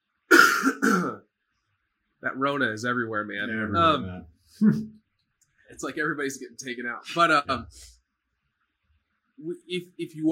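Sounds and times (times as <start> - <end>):
person clearing throat: 0.3 - 1.2
raspy cough-like hack: 0.3 - 1.2
speech: 2.2 - 5.0, 5.7 - 8.0, 9.4 - 10.3.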